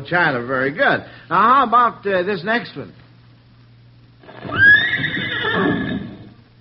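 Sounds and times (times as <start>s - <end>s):
speech: 0.0s - 3.0s
horse neighing: 4.2s - 6.4s.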